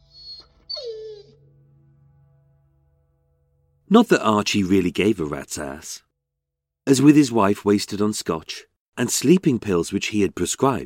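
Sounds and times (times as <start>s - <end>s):
red setter puppy whimpering: 0.1s - 1.4s
speech: 3.9s - 6.1s, 6.9s - 10.8s.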